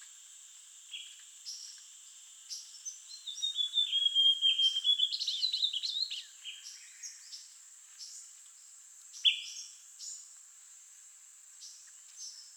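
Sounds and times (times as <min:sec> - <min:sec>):
Amazonian grosbeak Cyanoloxia rothschildii singing a sliding warbled whistled phrase: 0:03.1 - 0:07.0.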